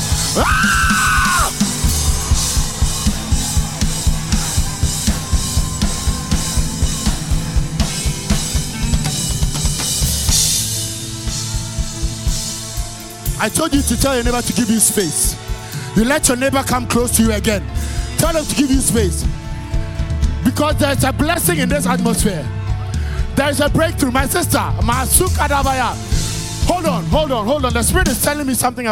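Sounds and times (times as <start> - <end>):
crowd of worshippers shouting and yelling: 0.0 - 10.0
steady pounding beat: 0.0 - 28.5
high-pitched yell: 0.3 - 3.7
speech: 0.4 - 1.1, 13.4 - 15.4, 16.0 - 19.4, 20.4 - 22.6, 23.4 - 26.1, 26.7 - 28.9.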